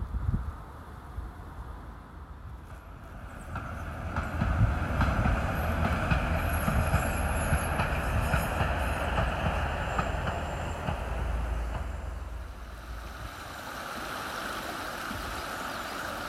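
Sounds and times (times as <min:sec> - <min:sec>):
train passing on a railway line beside the River Worth: 0:00.0 - 0:16.2
River Worth rushing: 0:02.8 - 0:16.2.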